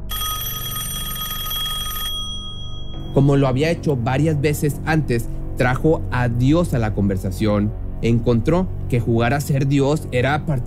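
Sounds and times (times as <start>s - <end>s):
telephone electric bell ringing in a family's home: 0.0s - 3.1s
speech: 3.1s - 10.6s.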